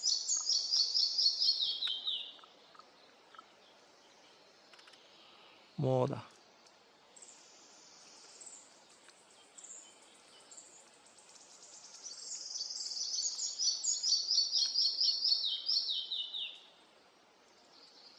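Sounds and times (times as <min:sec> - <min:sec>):
young male pied flycatcher calling in a forest: 0:00.0 - 0:03.6, 0:07.2 - 0:16.6
speech: 0:05.8 - 0:06.4.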